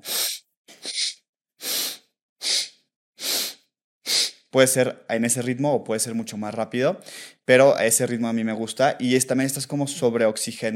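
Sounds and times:
rapid forceful breathing through the nose in bellows breath pranayama: 0.0s - 4.5s
speech: 4.5s - 10.7s.

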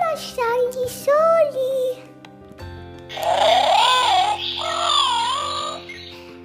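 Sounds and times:
speech: 0.2s - 2.1s
small birds chirping in wavering warbles: 3.1s - 6.4s.

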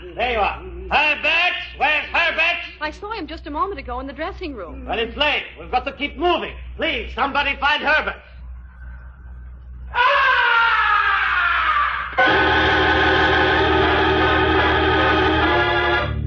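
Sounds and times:
speech: 0.1s - 1.4s, 2.9s - 8.3s
loud piercing blood-curdling scream: 9.9s - 16.2s.

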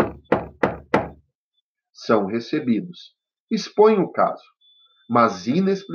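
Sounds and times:
knocking on a wooden door: 0.0s - 1.2s
speech: 2.0s - 5.9s.

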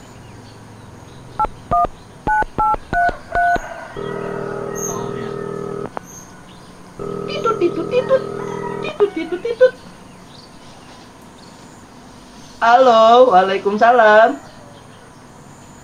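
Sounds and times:
phone keypad dialing tones: 1.4s - 6.0s, 7.0s - 9.4s
speech: 12.6s - 14.5s.

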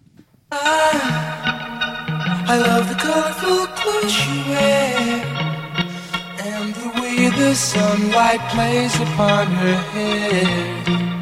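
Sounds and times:
speech: 0.5s - 1.3s, 2.5s - 5.5s, 7.4s - 11.0s
male lead voice singing pop song with instrumental backing: 0.5s - 5.4s, 6.0s - 11.1s.

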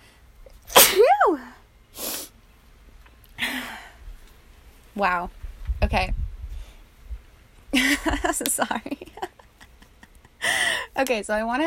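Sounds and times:
sneeze: 0.7s - 1.4s
speech: 5.0s - 6.2s, 7.7s - 9.2s, 11.0s - 11.6s.

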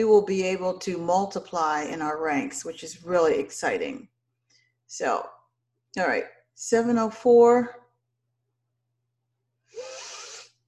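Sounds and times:
speech: 0.0s - 4.1s, 4.9s - 5.4s, 6.0s - 7.8s
person sniffing frankincense essential oil through the nose: 9.7s - 10.6s.

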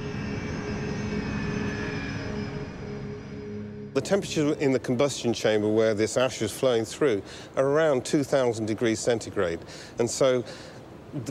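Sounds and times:
turbofan jet engine roaring with a droning tonal whine: 0.0s - 5.2s
speech: 4.0s - 11.2s.

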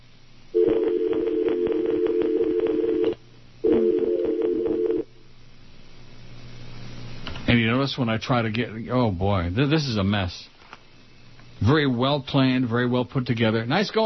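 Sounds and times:
harsh crackly telephone dial tone over a phone line: 0.6s - 5.0s
speech: 7.9s - 10.5s, 11.6s - 14.0s.

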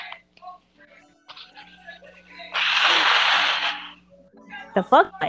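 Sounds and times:
person blowing nose: 2.6s - 4.0s
speech: 4.8s - 5.2s.

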